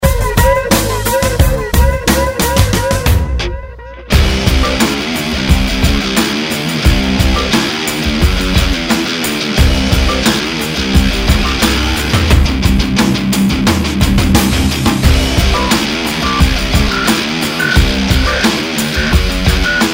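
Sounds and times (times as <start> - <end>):
reference music mix: 0.0 - 19.9.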